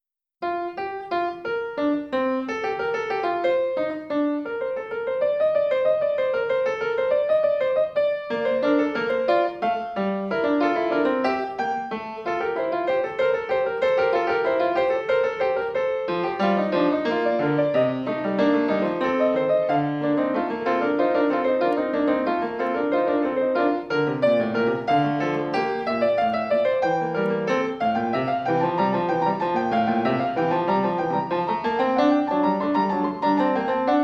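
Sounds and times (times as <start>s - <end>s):
baroque fugue on piano: 0.0s - 34.0s.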